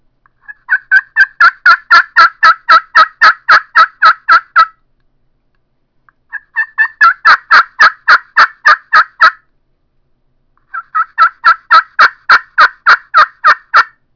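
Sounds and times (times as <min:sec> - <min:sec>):
pro glass turkey call yelps: 0:00.4 - 0:04.8, 0:06.3 - 0:09.4, 0:10.7 - 0:14.0.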